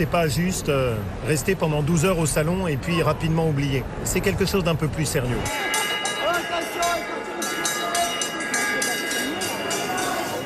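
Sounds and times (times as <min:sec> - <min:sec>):
speech: 0:00.0 - 0:05.8
closing bell ringing at agricultural show: 0:05.5 - 0:10.4
bustle and chatter of a crowded hall: 0:07.0 - 0:10.4.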